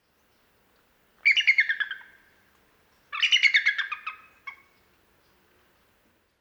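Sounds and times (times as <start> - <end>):
bald eagle Haliaeetus leucocephalus calling: 1.2 - 2.4, 3.1 - 5.4.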